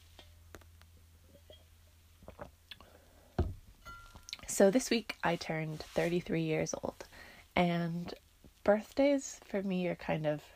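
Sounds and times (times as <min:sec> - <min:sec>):
person sipping water: 0:02.2 - 0:03.0
speech: 0:04.6 - 0:10.5.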